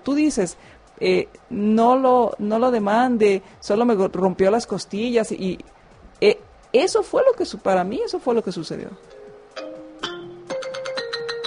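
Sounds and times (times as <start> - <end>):
speech: 0.0 - 9.7
phone ringtone bright electronic melody: 9.0 - 11.4.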